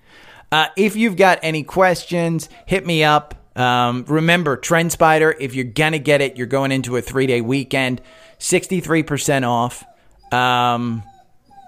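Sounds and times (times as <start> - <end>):
speech: 0.5 - 11.1
female dog crying with a drawn-out whine: 2.0 - 3.1, 6.0 - 11.6.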